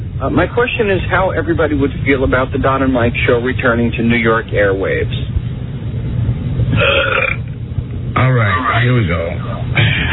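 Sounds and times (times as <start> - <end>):
steady low rumble: 0.0 - 10.1
speech: 0.2 - 5.3, 8.8 - 10.1
loud drawn-out burp: 6.7 - 7.6.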